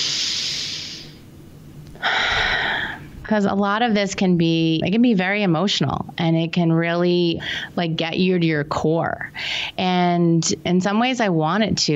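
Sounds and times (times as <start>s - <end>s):
deep breath drawn in and let out: 0.0s - 1.2s, 2.0s - 3.2s
speech: 3.3s - 11.9s.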